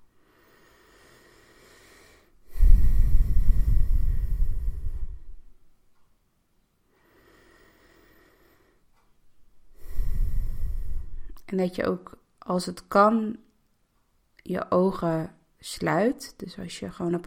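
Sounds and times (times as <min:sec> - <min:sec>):
deep breathing in and out during a guided relaxation exercise: 0:00.0 - 0:05.6, 0:06.9 - 0:11.5
speech: 0:11.5 - 0:13.4, 0:14.5 - 0:17.2.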